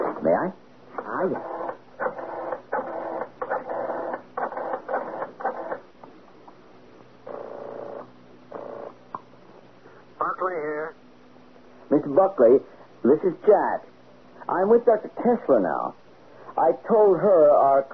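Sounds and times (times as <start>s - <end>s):
speech: 0.2s - 1.5s, 12.0s - 13.9s, 14.5s - 16.0s, 16.6s - 17.9s
telephone number dialed with mechanical ratcheting whirrs: 1.4s - 5.8s.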